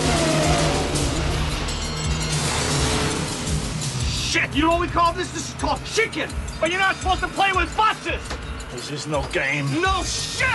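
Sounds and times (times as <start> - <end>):
car engine revving as the accelerator is floored: 0.0 - 7.3
speech: 4.5 - 10.5.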